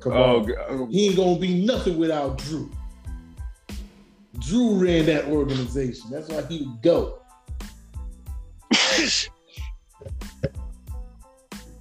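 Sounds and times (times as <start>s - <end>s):
speech: 0.0s - 2.8s, 4.4s - 7.6s, 9.0s - 9.4s
sneeze: 8.7s - 9.7s.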